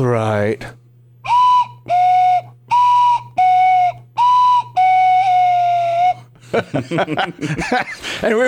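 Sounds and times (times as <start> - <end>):
cuckoo whistle blown loudly in two-note calls: 1.2 - 6.3
laughter: 6.4 - 8.4.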